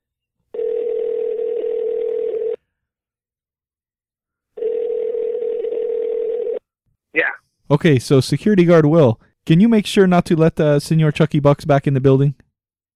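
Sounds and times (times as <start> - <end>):
telephone line ringing through a handset: 0.5 - 2.6, 4.6 - 6.6
speech: 7.7 - 12.4.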